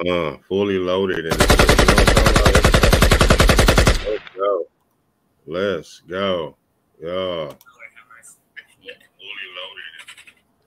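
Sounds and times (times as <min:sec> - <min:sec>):
speech: 0:00.0 - 0:02.6, 0:05.5 - 0:07.7
quiet hiss: 0:00.0 - 0:10.6
tinny voice through a phone speaker: 0:07.7 - 0:10.4.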